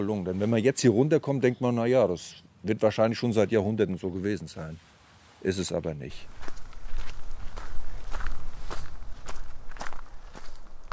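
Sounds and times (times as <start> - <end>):
speech: 0.0 - 6.6
constant low noise: 0.0 - 10.9
footsteps walking uphill in hilly low-mountain country: 6.1 - 10.9.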